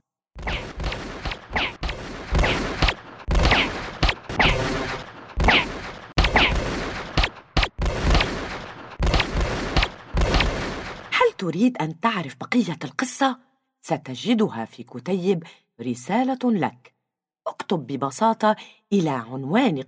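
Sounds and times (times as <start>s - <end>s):
gunfire: 0.4s - 11.2s
speech: 11.4s - 16.9s, 17.5s - 19.8s.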